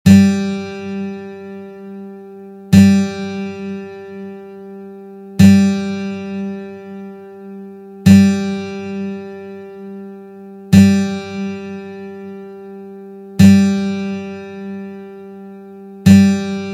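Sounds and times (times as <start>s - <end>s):
acoustic guitar strings: 0.1s - 16.7s.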